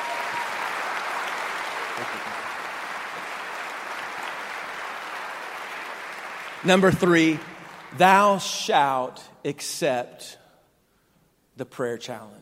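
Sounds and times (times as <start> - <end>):
crowd applauding: 0.0 - 8.6
speech: 2.0 - 2.4, 6.6 - 10.4, 11.6 - 12.3.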